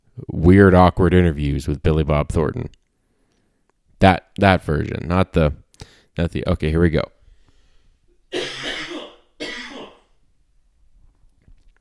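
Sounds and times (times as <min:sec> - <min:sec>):
speech: 0:00.5 - 0:02.8, 0:04.0 - 0:07.2
harsh dry coughs: 0:08.3 - 0:10.1.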